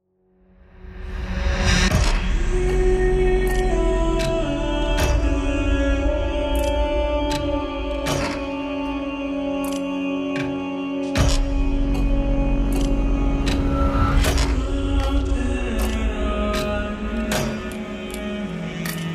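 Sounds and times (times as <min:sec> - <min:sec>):
epic industrial hybrid horror music with countdown vocals: 0:00.4 - 0:19.1.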